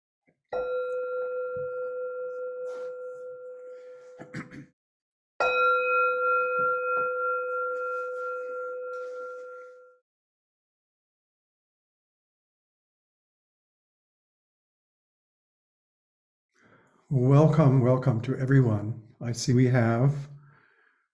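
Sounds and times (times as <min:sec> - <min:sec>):
bell ringing: 0:00.6 - 0:04.2, 0:05.4 - 0:09.9
rustling: 0:07.7 - 0:09.8
speech: 0:17.1 - 0:20.3.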